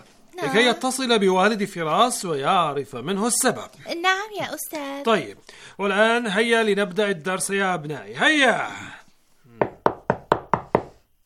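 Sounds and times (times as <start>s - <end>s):
speech: 0.4s - 9.0s
quick knocks on a door: 9.6s - 11.0s.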